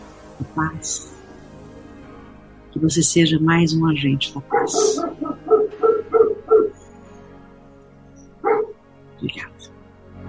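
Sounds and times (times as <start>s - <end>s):
speech: 0.4s - 1.2s, 2.8s - 5.3s
dog barking: 4.4s - 7.0s, 8.4s - 8.8s.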